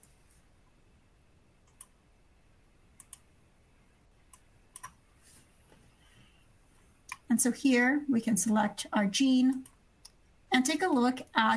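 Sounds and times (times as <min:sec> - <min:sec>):
computer mouse clicks and keyboard typing: 0:01.6 - 0:02.0, 0:03.0 - 0:03.3, 0:04.3 - 0:05.0, 0:09.4 - 0:10.2
speech: 0:07.4 - 0:09.7, 0:10.5 - 0:11.5.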